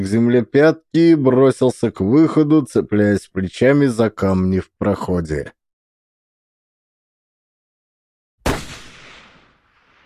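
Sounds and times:
speech: 0.0s - 5.6s
gunshot echoing in deep valleys: 8.4s - 10.0s.

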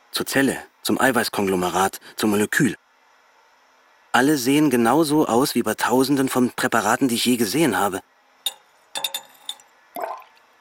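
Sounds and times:
speech: 0.1s - 2.8s, 4.1s - 8.1s
glass measuring cylinder clinks: 8.5s - 9.7s
blood poured into a glass measuring cylinder: 8.5s - 10.5s.

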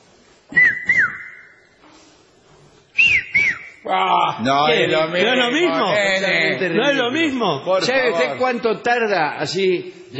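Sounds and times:
official and amateur whistle blasts: 0.5s - 1.7s, 3.0s - 3.9s
speech: 3.9s - 10.1s.

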